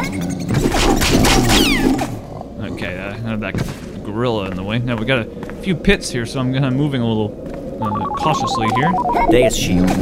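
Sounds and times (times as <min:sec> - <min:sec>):
dense steady video game background: 0:00.0 - 0:10.0
speech: 0:03.2 - 0:10.0
bright sweeping video game tones: 0:07.8 - 0:09.6.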